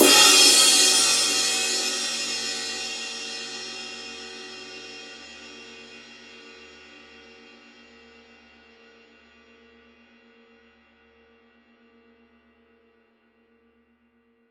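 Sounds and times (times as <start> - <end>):
22-inch reflector bell ride cymbal edge hit, forged bronze alloy: 0.0 - 5.8.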